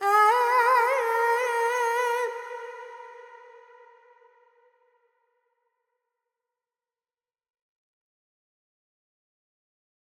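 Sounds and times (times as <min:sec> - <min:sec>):
Carnatic female vocal alaps in Dorian mode: 0:00.0 - 0:03.8.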